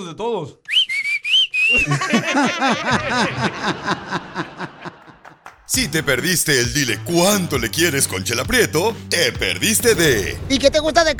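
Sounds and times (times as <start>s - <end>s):
speech: 0.0s - 0.7s, 1.7s - 4.5s, 5.8s - 11.1s
family call whistle with bright rising and wavering notes: 0.7s - 1.8s
rhythmic laughter: 1.7s - 10.4s.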